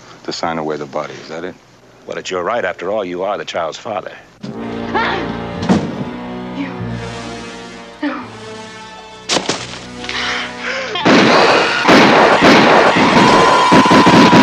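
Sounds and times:
speech: 0.3s - 5.2s
gunfire in a horror film scene: 11.0s - 14.4s.

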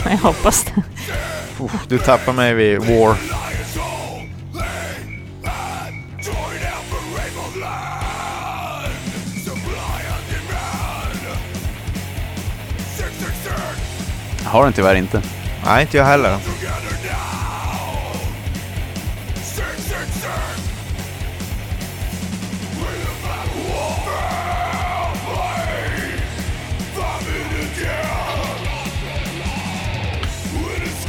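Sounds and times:
laughter: 0.0s - 4.0s
distorted guitars: 0.0s - 31.0s
fast driving D-beat punk drums: 0.0s - 31.0s
speech: 0.1s - 3.6s, 14.5s - 16.8s
hoarse shouted punk vocals: 0.2s - 3.3s, 14.4s - 17.4s.

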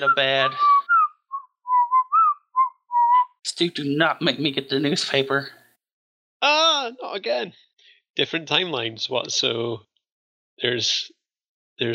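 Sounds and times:
speech: 0.0s - 0.8s, 3.5s - 5.6s, 6.4s - 9.9s, 10.6s - 11.2s
person whistling a short casual tune: 0.0s - 3.4s.

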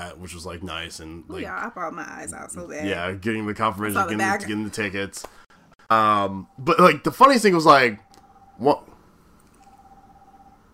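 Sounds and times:
speech: 0.0s - 8.9s
steady electronic beep from a mobile phone while charging: 8.0s - 8.8s, 9.5s - 10.6s.

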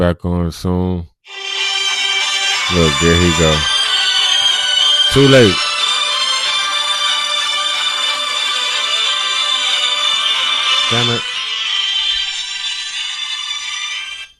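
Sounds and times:
speech: 0.0s - 1.4s, 2.7s - 3.8s, 5.1s - 5.7s, 10.9s - 11.3s
phone ringtone with bright busy melody: 1.3s - 14.3s.

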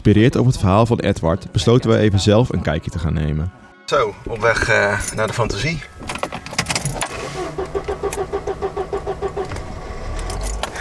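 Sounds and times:
speech: 0.0s - 7.1s
car engine turning over: 4.1s - 10.7s
keys jingling and rattling: 4.1s - 10.7s
rhythmic mechanical ticking of car engine: 4.1s - 10.7s.

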